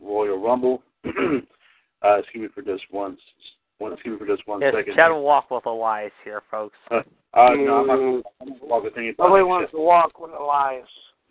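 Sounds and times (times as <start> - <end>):
speech: 0.4 - 11.1
person mimicking squawking bird: 6.9 - 8.9.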